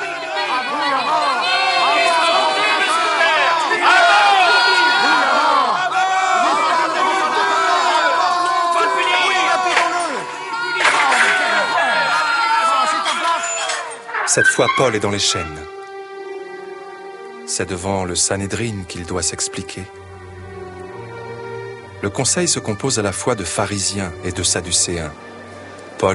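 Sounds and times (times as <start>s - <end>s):
angry crowd roaring, shouting and jeering: 0.0s - 14.9s
speech: 14.4s - 15.8s, 17.6s - 20.1s, 22.0s - 25.4s.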